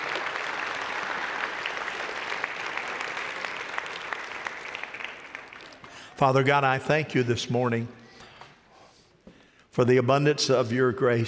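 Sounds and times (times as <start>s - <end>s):
standing church audience applauding in a sanctuary: 0.0s - 6.6s
speech: 6.2s - 8.0s, 9.8s - 11.2s.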